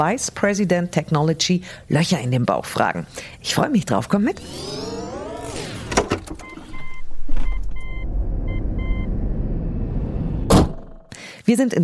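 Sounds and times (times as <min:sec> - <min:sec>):
speech: 0:00.0 - 0:04.9, 0:11.5 - 0:11.8
short electronic parking beeps: 0:04.4 - 0:09.6
electric car parking at a charging station in Munich Germany: 0:04.4 - 0:10.5
rising whine: 0:04.4 - 0:11.1
firm car door thud: 0:10.5 - 0:10.9.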